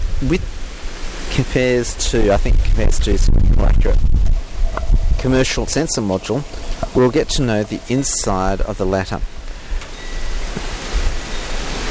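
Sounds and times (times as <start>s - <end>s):
wind blowing across the microphone: 0.0s - 11.9s
speech: 0.2s - 0.7s, 1.4s - 9.3s.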